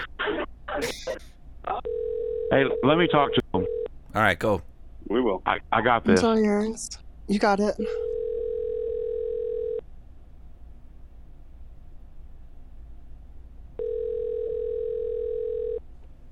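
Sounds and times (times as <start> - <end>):
ringback tone of an outgoing telephone call: 1.9 - 3.9, 8.0 - 9.8, 13.8 - 15.8
speech: 2.5 - 3.4, 4.2 - 8.0.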